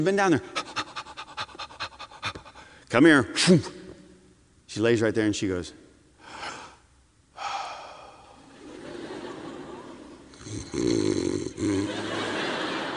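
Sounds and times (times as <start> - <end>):
speech: 0.0 - 0.6, 2.9 - 3.8, 4.7 - 5.8
laughter: 8.4 - 10.4, 11.6 - 12.9
person imitating a dog snoring: 10.4 - 12.0.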